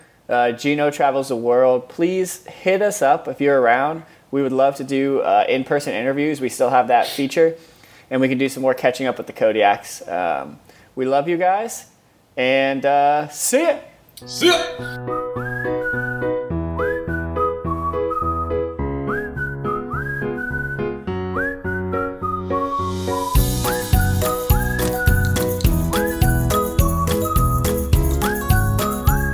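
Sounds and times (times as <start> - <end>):
speech: 0.3 - 15.8
cheerful bouncy instrumental tune led by whistled melody: 14.2 - 29.3
drums and bright percussion: 23.0 - 29.3.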